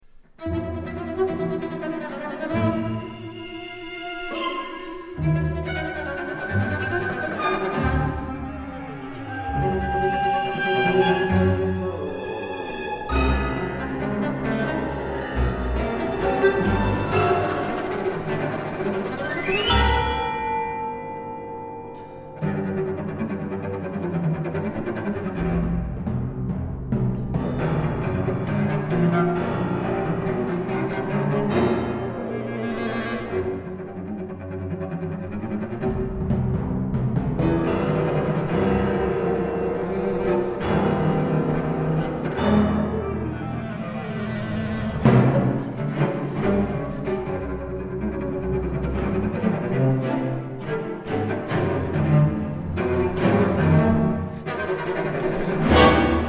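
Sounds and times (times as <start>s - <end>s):
cello concerto with cello and orchestra: 0.0s - 56.2s.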